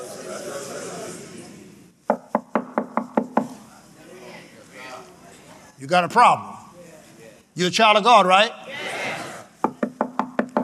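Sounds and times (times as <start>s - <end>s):
sharp knocks: 2.1s - 3.5s, 9.6s - 10.6s
speech: 5.8s - 6.5s, 7.6s - 8.6s.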